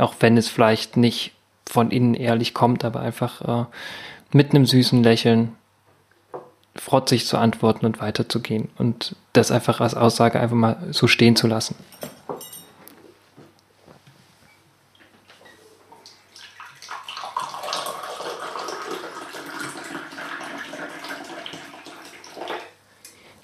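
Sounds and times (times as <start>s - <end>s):
speech: 0.0s - 5.6s, 6.8s - 12.2s
light clinks: 11.9s - 12.8s
ginger tea poured from teapot into cup: 16.1s - 22.8s.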